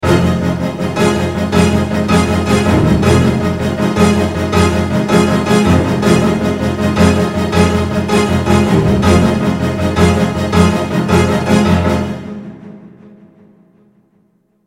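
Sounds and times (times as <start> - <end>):
full orchestra playing: 0.0 - 13.2.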